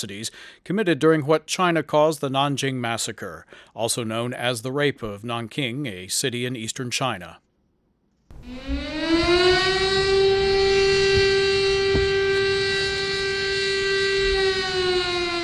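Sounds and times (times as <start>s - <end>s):
speech: 0.0s - 7.5s, 8.4s - 9.7s
air raid siren wailing: 8.3s - 15.4s.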